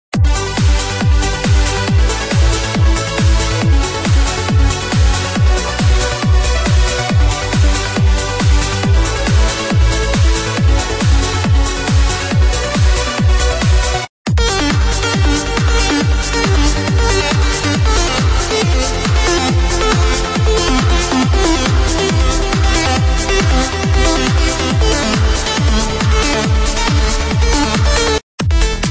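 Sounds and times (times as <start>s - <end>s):
trance music: 0.2s - 28.8s.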